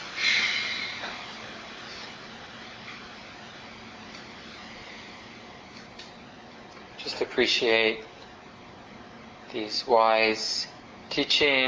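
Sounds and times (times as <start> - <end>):
slow breath taken during a guided mindfulness meditation: 0.1 - 1.3
speech: 7.1 - 8.1, 9.5 - 11.6.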